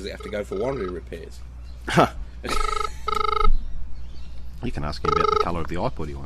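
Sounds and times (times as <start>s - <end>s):
electronic telephone ringing: 0.0s - 1.0s, 2.5s - 3.5s, 5.0s - 5.6s
speech: 0.0s - 2.8s, 4.6s - 6.2s
laughter: 1.9s - 3.2s.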